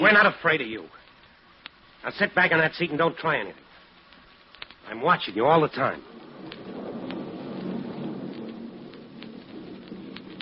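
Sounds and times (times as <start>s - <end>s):
speech: 0.0s - 1.0s, 2.0s - 3.6s, 4.9s - 6.2s
steady dense rain hissing: 0.0s - 10.4s
low rolling thunder: 5.4s - 10.4s.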